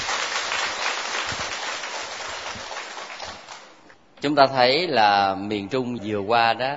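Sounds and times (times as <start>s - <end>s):
large crowd clapping: 0.0s - 3.8s
speech: 4.2s - 6.7s.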